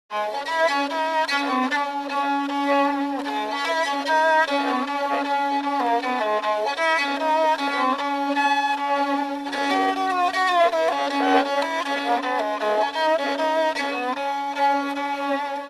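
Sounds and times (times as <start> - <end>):
Yörük kemane bowed fiddle: 0.1 - 15.6.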